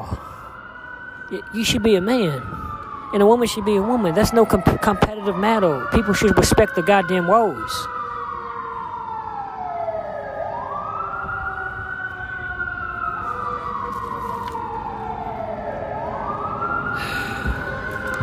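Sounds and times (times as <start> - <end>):
emergency vehicle siren wailing: 0.0 - 18.2
outdoor traffic noise: 0.0 - 18.2
speech: 1.3 - 8.0.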